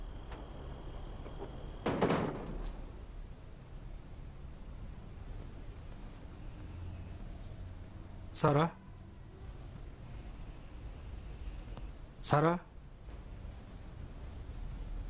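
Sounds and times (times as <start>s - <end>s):
door pushed shut with a scraping thud: 0.0s - 3.0s
faint insect chirping: 0.0s - 12.1s
quiet hum: 0.0s - 15.0s
speech: 8.4s - 8.8s, 12.3s - 12.7s.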